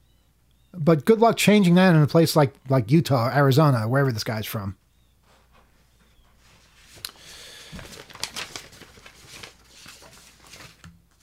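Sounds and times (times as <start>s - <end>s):
speech: 0.7s - 4.8s
printed sheet of paper rustling and crinkling: 6.4s - 11.2s.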